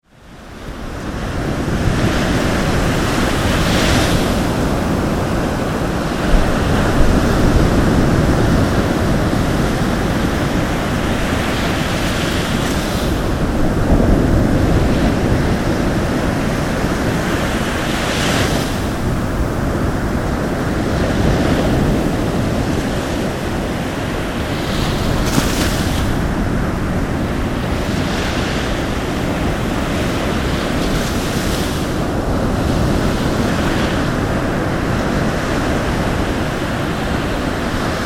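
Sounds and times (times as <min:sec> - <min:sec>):
waves: 0:00.0 - 0:38.0.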